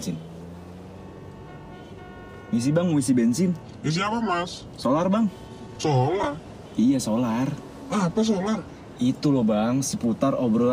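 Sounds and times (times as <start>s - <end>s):
car horns honking in a traffic jam: 0.0s - 8.4s
dense rumble of road traffic in a traffic jam: 0.0s - 10.7s
speech: 2.5s - 10.7s.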